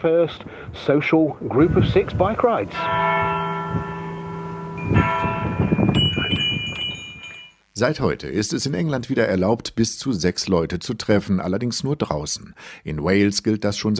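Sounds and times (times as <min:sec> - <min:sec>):
speech: 0:00.0 - 0:03.9, 0:07.8 - 0:13.9
large church bell struck on a village square in England: 0:01.5 - 0:07.7.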